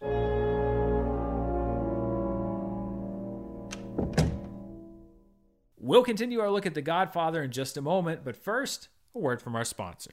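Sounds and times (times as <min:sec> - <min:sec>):
sustained musical chord: 0:00.0 - 0:05.4
door shutting with a click and heavy thud: 0:03.7 - 0:04.8
speech: 0:05.9 - 0:10.1.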